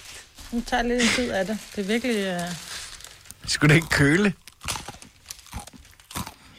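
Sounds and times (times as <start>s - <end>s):
speech: 0.5s - 2.7s, 3.5s - 4.4s
crunchy chewing of oatmeal with sugar: 1.6s - 6.5s.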